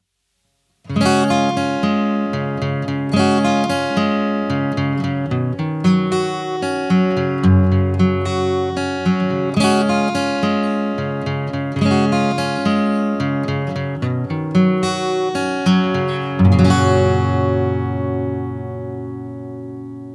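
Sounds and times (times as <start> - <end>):
western acoustic guitar: 0.8 - 20.1.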